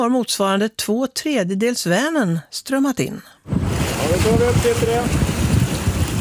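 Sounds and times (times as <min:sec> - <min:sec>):
speech: 0:00.0 - 0:05.3
wind buffeting the microphone on a ship's deck at sea: 0:03.5 - 0:06.1.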